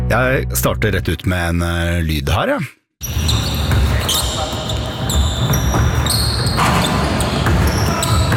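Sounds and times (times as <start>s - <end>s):
speech: 0.1s - 2.8s
basketball shoes squeaking on a court in a sports arena: 3.0s - 8.3s
basketball bouncing: 3.1s - 8.3s
sports arena noise: 3.1s - 8.3s.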